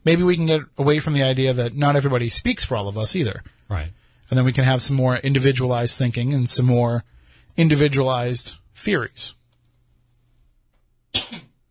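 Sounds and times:
speech: 0.0s - 9.4s, 11.1s - 11.5s
person with allergies coughing: 11.2s - 11.6s.

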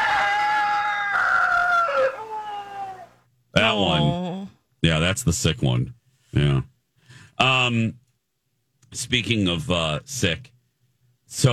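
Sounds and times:
rooster crowing: 0.0s - 3.2s
speech: 3.7s - 4.2s, 4.8s - 6.7s, 7.4s - 8.0s, 8.9s - 10.5s, 11.3s - 11.5s.

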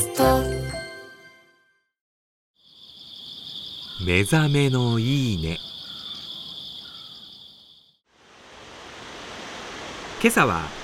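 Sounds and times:
high steady insect trill: 2.6s - 8.0s
speech: 4.0s - 5.7s, 10.2s - 10.8s
roaring waterfall: 8.1s - 10.8s.

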